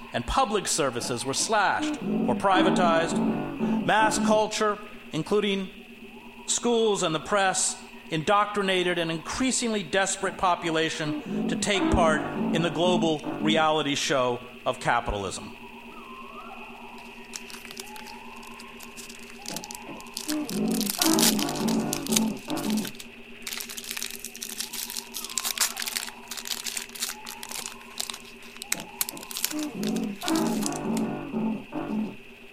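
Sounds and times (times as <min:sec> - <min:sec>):
faint steady hum: 0:00.0 - 0:32.5
speech: 0:00.1 - 0:05.8, 0:06.5 - 0:15.6
foil-wrapped card packs shuffled: 0:17.0 - 0:31.1.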